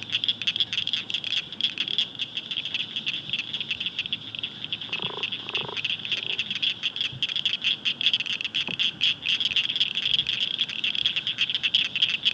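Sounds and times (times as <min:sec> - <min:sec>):
Blanchard's cricket frog chorus of rapid high clicking pulses: 0:00.0 - 0:12.3.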